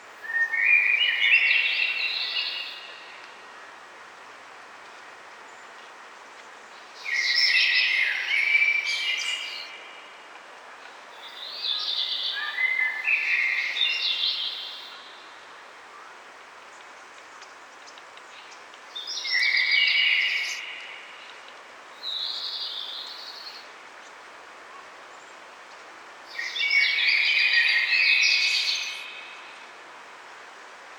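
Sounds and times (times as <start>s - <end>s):
forest background noise from a game rip: 0.0s - 30.9s.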